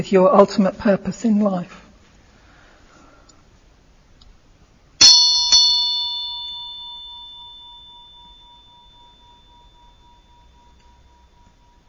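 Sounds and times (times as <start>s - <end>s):
speech: 0.0s - 1.8s
Tibetan vajra bell ringing: 5.0s - 11.8s.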